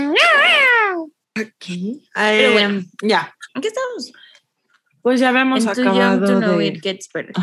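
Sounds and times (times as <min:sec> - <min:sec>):
cat yowling: 0:00.1 - 0:01.1
speech: 0:02.2 - 0:04.2, 0:05.1 - 0:07.4.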